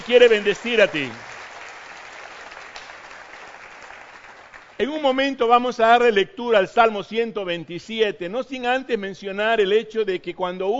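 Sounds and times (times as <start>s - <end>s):
audience applauding: 0.0s - 4.9s
speech: 0.1s - 1.3s, 4.8s - 10.7s.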